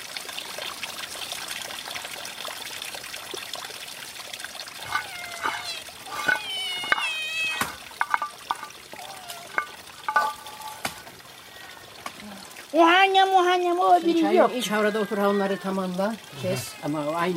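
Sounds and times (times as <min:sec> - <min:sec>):
several cats meowing while being fed: 0:04.8 - 0:07.8, 0:09.0 - 0:09.6
clinking and scraping of cat feeding: 0:04.8 - 0:08.8, 0:09.4 - 0:11.0
speech: 0:12.8 - 0:17.3.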